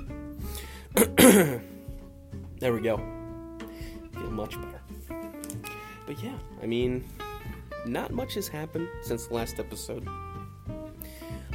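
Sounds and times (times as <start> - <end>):
raspy throat clearing: 0.9 - 1.8
person coughing: 1.0 - 1.8
speech: 1.3 - 1.7, 2.6 - 3.2, 4.2 - 5.1, 6.1 - 7.2, 7.8 - 10.2.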